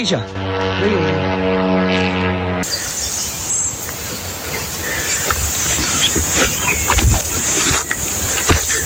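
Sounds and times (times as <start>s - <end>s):
speech: 0.0s - 1.4s, 2.0s - 3.2s
army helicopter flying over a forest crash site: 0.0s - 8.8s
army helicopter rotor wash and turbine roar: 0.0s - 8.8s.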